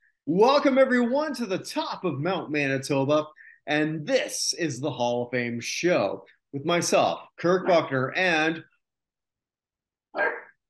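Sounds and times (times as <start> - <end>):
speech: 0.2 - 8.7, 10.1 - 10.4
corgi barking: 10.1 - 10.6.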